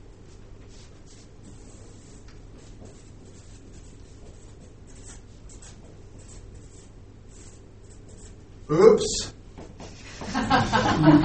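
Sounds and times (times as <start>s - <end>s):
low hum: 0.0s - 11.2s
pen scratching across paper drawing a clock: 0.7s - 8.5s
speech: 8.7s - 9.4s, 11.0s - 11.2s
laughter: 10.0s - 11.2s.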